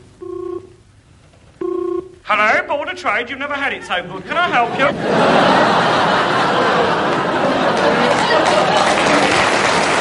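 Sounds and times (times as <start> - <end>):
telephone line ringing: 0.0 - 0.8, 1.6 - 2.2
hiss: 0.0 - 6.2
speech: 2.3 - 6.9
laughter: 3.9 - 9.9.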